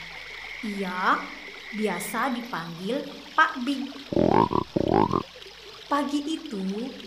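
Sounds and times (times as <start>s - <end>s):
speech: 0.6s - 5.3s, 5.9s - 7.0s
large frog croaking at a lake: 4.1s - 5.2s.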